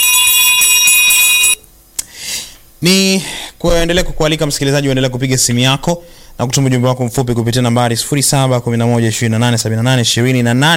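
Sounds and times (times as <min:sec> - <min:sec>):
electronic bell ringing to signal a wrong quiz answer: 0:00.0 - 0:01.6
speech: 0:02.8 - 0:10.7.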